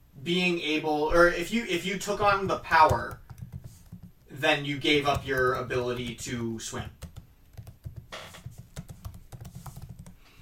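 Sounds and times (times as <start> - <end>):
speech: 0.2 - 3.2, 4.4 - 7.0
typing on a computer keyboard: 2.2 - 10.4.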